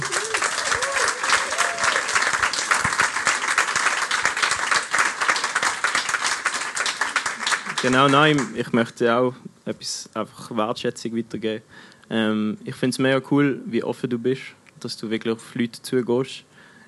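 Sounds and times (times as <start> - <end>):
audience applause: 0.0 - 8.6
speech: 7.8 - 16.5.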